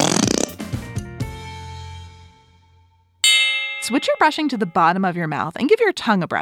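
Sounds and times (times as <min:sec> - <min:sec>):
whoopee cushion deflating with buzzy rippling fart noise: 0:00.0 - 0:00.6
ringing tone: 0:03.2 - 0:05.1
speech: 0:03.9 - 0:06.3.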